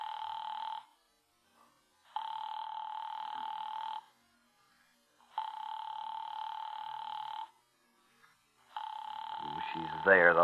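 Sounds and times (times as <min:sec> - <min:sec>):
telephone ringing with long electronic buzzing rings: 0:00.0 - 0:01.0, 0:02.1 - 0:04.1, 0:05.2 - 0:07.6, 0:08.7 - 0:10.4
speech: 0:10.0 - 0:10.4.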